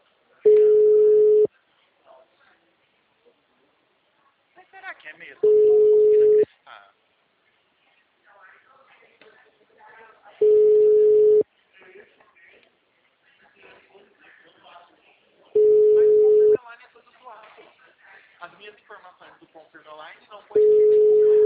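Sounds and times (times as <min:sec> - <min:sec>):
people talking quietly: 0:00.0 - 0:21.4
phone ringback tone before voicemail: 0:00.5 - 0:01.5, 0:05.4 - 0:06.4, 0:10.4 - 0:11.4, 0:15.6 - 0:16.6, 0:20.6 - 0:21.4.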